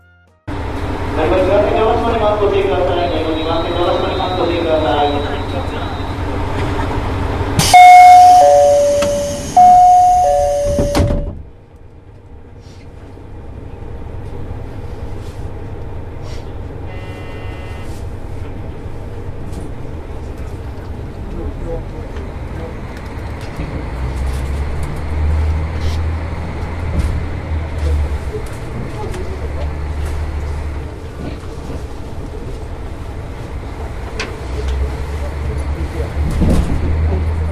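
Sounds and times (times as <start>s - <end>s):
train rumbling heard from inside the carriage as it pulls out: 0.5s - 37.5s
bright chime melody: 7.8s - 11.2s.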